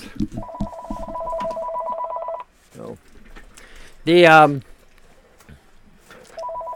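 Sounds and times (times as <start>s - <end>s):
telephone ringing with a warbling two-tone electronic trill: 0.4s - 2.5s, 6.4s - 6.7s
speech: 4.0s - 4.7s.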